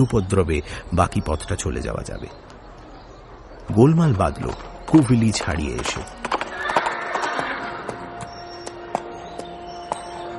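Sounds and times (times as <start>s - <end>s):
speech: 0.0s - 2.4s, 3.7s - 6.3s
horses galloping hoofbeats: 4.3s - 10.3s.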